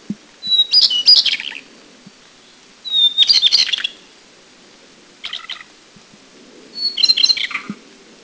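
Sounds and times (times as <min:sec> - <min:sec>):
Taiwan shortwing singing in Taiwan: 0:00.4 - 0:01.6, 0:02.8 - 0:04.0, 0:06.7 - 0:07.8.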